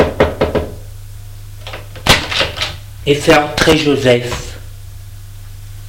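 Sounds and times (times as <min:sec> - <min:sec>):
knocking on a wooden door: 0:00.0 - 0:00.8
speech: 0:03.1 - 0:04.5.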